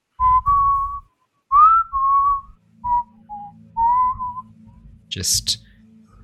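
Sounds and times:
person whistling an off-key wavering tune echoing off stone walls: 0:00.2 - 0:04.5
low steady rumble: 0:00.2 - 0:06.2
speech: 0:05.2 - 0:05.7.

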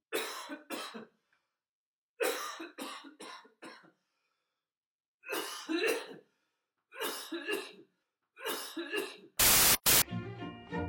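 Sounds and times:
next-door neighbour coughing loudly heard through a wall: 0:00.1 - 0:01.1, 0:02.2 - 0:03.8, 0:05.3 - 0:06.2, 0:07.0 - 0:07.8, 0:08.4 - 0:09.3
brief buzzy tone: 0:09.4 - 0:10.0
sharp burst of static: 0:09.4 - 0:10.0.

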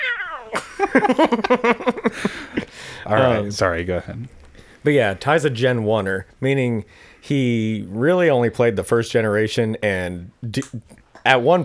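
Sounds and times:
person imitating a cat meowing: 0:00.0 - 0:00.7
voiced chatter or laughter: 0:00.0 - 0:06.3
speech: 0:00.8 - 0:11.6.

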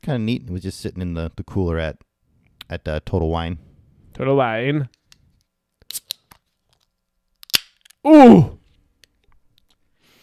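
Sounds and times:
speech: 0:00.0 - 0:05.0, 0:08.0 - 0:08.6
can of double dry-hopped double IPA cracking open: 0:07.4 - 0:08.0.

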